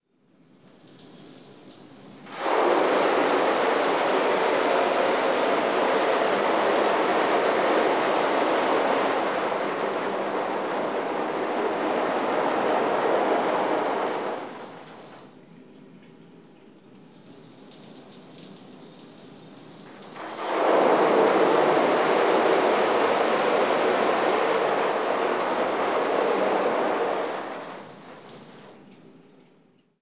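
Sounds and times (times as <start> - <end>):
pressure washer spraying on silk screen: 2.3 - 15.3, 19.9 - 28.8.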